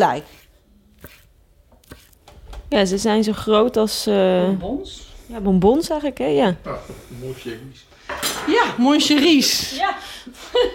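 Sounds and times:
speech: 0.0 - 0.4, 2.7 - 10.7
kitchen knife cutting food on a board: 0.3 - 2.2.

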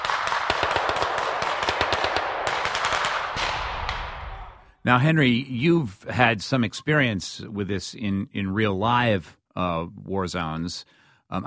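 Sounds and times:
rapid gunfire from armed men during a military exercise in Lithuania: 0.0 - 4.5
speech: 4.8 - 11.4.

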